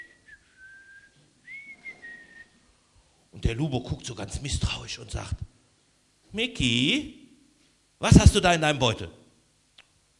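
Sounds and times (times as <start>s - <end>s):
person whistling a casual innocent-sounding little tune: 0.0s - 2.6s
speech: 3.4s - 5.5s, 6.3s - 7.2s, 8.0s - 9.2s.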